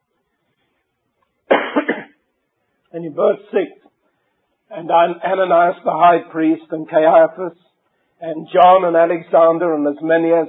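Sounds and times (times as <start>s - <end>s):
audience member coughing: 1.5s - 2.2s
speech: 2.9s - 3.9s, 4.7s - 10.4s.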